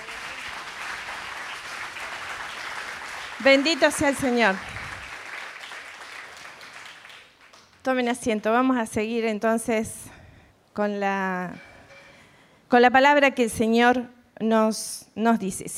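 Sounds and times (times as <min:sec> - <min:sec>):
large crowd applauding: 0:00.0 - 0:07.9
speech: 0:03.4 - 0:04.8, 0:07.8 - 0:10.1, 0:10.8 - 0:11.7, 0:12.7 - 0:15.7.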